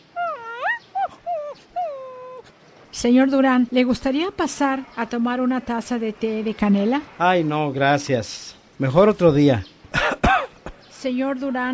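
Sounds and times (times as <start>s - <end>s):
small female dog whimpering: 0.0s - 2.5s
speech: 3.0s - 9.7s, 11.0s - 11.7s.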